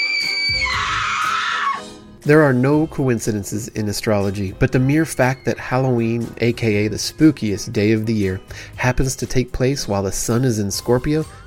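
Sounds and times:
chilling horror movie scream: 0:00.0 - 0:02.0
speech: 0:02.2 - 0:11.4.

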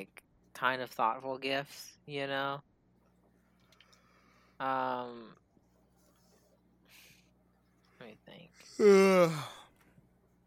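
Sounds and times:
speech: 0:00.0 - 0:02.7, 0:04.6 - 0:05.4, 0:08.0 - 0:09.6
breathy yawn from one person: 0:08.7 - 0:09.7.

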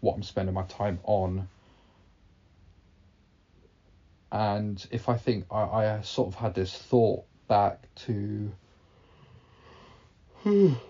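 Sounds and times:
speech: 0:00.0 - 0:01.6, 0:04.3 - 0:08.6, 0:10.4 - 0:10.8
person yawning: 0:10.4 - 0:10.8.

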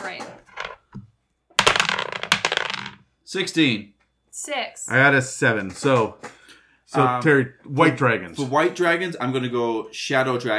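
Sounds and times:
dice tumbling and bouncing across a table: 0:00.2 - 0:03.0
dice rattling: 0:00.4 - 0:01.0, 0:01.6 - 0:03.0
speech: 0:03.3 - 0:10.5.

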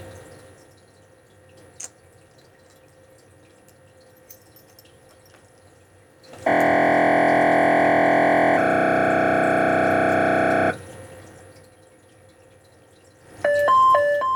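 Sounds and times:
loud sustained electronic tone: 0:06.5 - 0:10.8.

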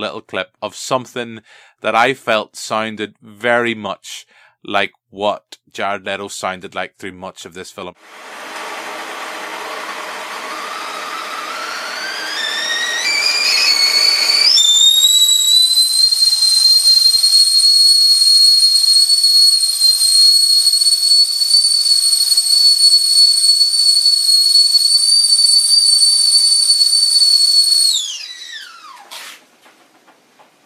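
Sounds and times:
speech: 0:00.0 - 0:08.6
whistling kettle screaming on a piercing high note: 0:08.8 - 0:29.0.

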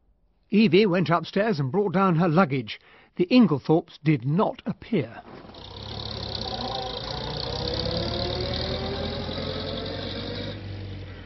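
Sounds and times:
speech: 0:00.5 - 0:05.7
car engine rumble driving off down a drive: 0:05.2 - 0:11.2.

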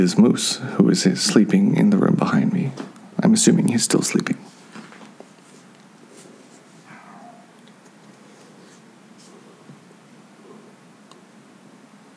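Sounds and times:
speech: 0:00.0 - 0:04.4
steady quiet hiss: 0:00.0 - 0:12.1
small dog barking: 0:06.8 - 0:07.6.

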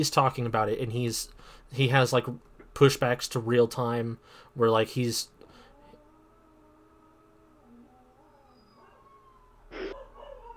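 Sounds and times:
speech: 0:00.0 - 0:05.4
several dogs howling together: 0:05.7 - 0:10.5.

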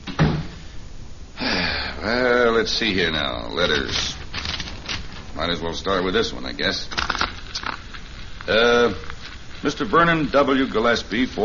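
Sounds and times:
door swinging shut with a thud: 0:00.0 - 0:00.6
speech: 0:02.0 - 0:04.2, 0:05.4 - 0:07.2, 0:08.5 - 0:11.4
soft rustling or settling sound: 0:03.4 - 0:11.4.

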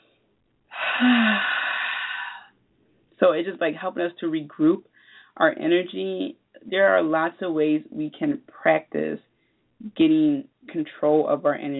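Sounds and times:
long deep breath taken as part of a breathing exercise: 0:00.7 - 0:02.6, 0:04.9 - 0:05.4
speech: 0:01.0 - 0:01.5, 0:03.2 - 0:11.7.

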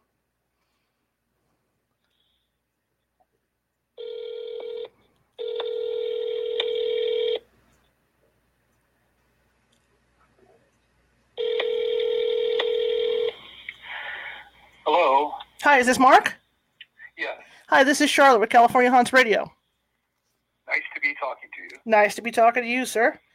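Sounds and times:
telephone dialing tones: 0:04.0 - 0:07.4, 0:11.4 - 0:13.4
speech: 0:15.7 - 0:16.4, 0:17.2 - 0:19.6, 0:21.8 - 0:23.2.

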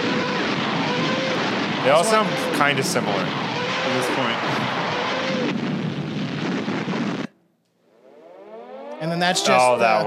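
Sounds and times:
bomb exploding: 0:00.0 - 0:07.3
speech: 0:01.8 - 0:04.8, 0:09.0 - 0:10.0.

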